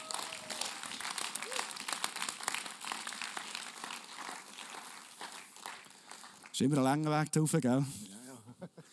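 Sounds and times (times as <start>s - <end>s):
audience applause: 0.0s - 6.6s
speech: 6.6s - 8.0s.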